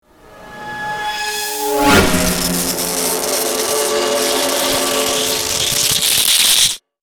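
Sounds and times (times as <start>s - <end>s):
dark reveal energy flash crack: 1.6s - 6.8s.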